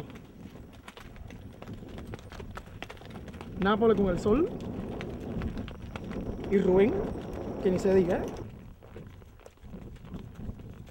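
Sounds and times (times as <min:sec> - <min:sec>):
constant low rumble of outdoor noise: 0:00.0 - 0:10.8
horse hooves clip-clopping while riding on horseback: 0:00.0 - 0:10.8
speech: 0:03.6 - 0:04.7, 0:06.5 - 0:08.4.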